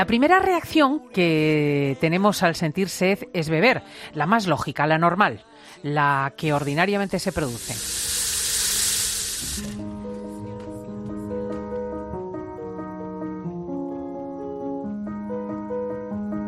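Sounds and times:
speech: 0.0s - 8.2s, 9.4s - 10.0s
water pouring from a tap: 6.7s - 9.8s
sustained tonal music: 9.5s - 16.4s.

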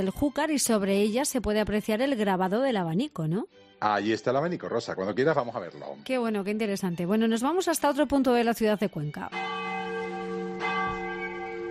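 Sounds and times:
speech: 0.0s - 9.6s
church bell ringing: 9.3s - 11.6s.

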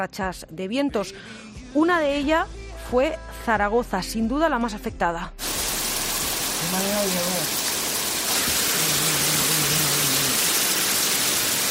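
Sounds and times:
speech: 0.0s - 5.4s, 6.6s - 7.6s
heavy rain downpour: 5.4s - 11.6s.

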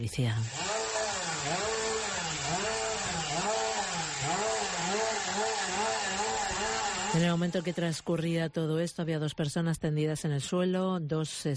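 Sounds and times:
speech: 0.0s - 0.6s, 5.3s - 11.5s
chainsaw revving: 0.4s - 8.1s.

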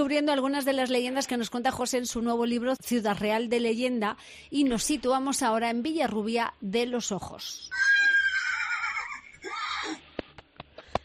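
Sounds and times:
speech: 0.0s - 8.0s
horse whinnying loudly: 7.7s - 10.0s.

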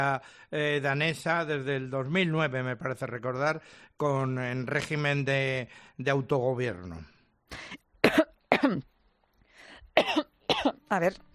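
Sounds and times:
speech: 0.0s - 7.8s, 8.6s - 8.9s, 10.0s - 11.3s
person coughing: 7.6s - 8.9s, 10.0s - 10.8s.

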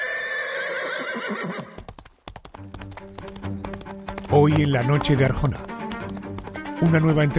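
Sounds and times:
horse neighing with a long wavering whinny: 0.0s - 1.8s
speech: 1.2s - 1.6s, 4.3s - 5.7s, 6.8s - 7.3s
horse hooves clip-clopping: 1.5s - 7.3s.

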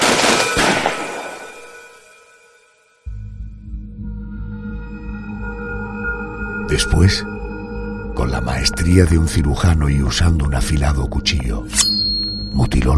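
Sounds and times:
sharp loud pistol shots echoing: 0.0s - 1.8s
low heavy droning tone: 3.1s - 10.6s, 11.7s - 12.9s
speech: 6.7s - 7.4s, 8.2s - 12.9s.

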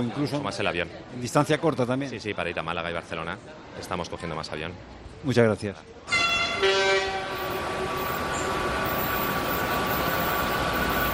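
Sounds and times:
speech: 0.0s - 6.8s
train horn blast at a railway station: 6.1s - 8.7s
train rail rumble at a railway station: 6.1s - 11.1s.

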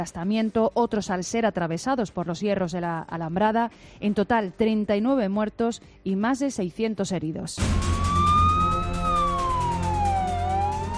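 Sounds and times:
speech: 0.0s - 8.1s
ambulance siren wailing: 7.6s - 10.9s.

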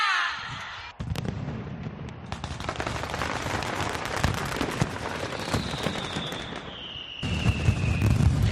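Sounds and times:
mascletà firecracker barrage: 0.5s - 8.4s
faint whistling tone gliding overhead: 5.3s - 8.2s.

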